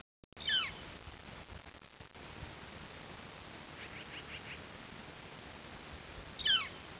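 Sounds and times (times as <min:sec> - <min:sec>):
flicker calling in eastern Washington: 0:00.4 - 0:00.9, 0:03.6 - 0:05.3, 0:06.2 - 0:06.9.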